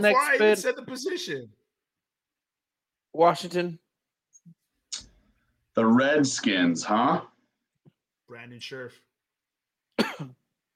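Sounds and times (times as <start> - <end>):
speech: 0.0 - 1.6, 3.1 - 3.8, 5.8 - 7.3, 8.3 - 9.1, 10.0 - 10.4
single short forced cough trailing into a voiced grunt: 10.0 - 10.4.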